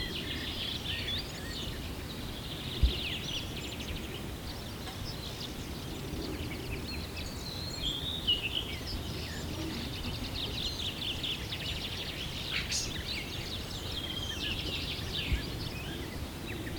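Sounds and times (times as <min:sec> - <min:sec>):
dense chorus of birds chirping and trilling at sunrise: 0:00.0 - 0:16.7.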